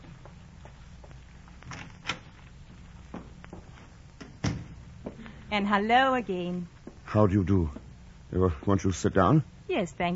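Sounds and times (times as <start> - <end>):
door opening and closing: 1.6 - 2.4, 4.2 - 4.8
speech: 5.5 - 10.1.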